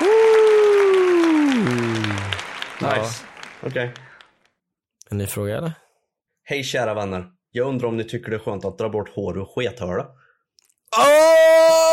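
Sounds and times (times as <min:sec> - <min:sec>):
applause sound effect: 0:00.0 - 0:04.6
speech: 0:02.8 - 0:04.1, 0:05.1 - 0:05.8, 0:06.5 - 0:10.2, 0:10.9 - 0:11.9.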